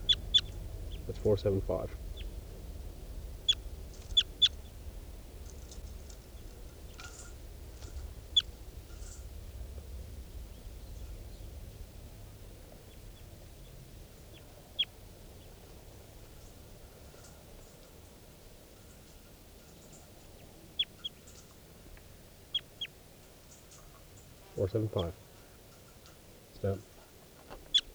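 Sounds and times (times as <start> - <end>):
low rumble of background noise: 0.0 - 14.4
wild birds chirping: 0.0 - 27.9
speech: 1.1 - 2.0, 24.7 - 25.2, 26.6 - 26.9.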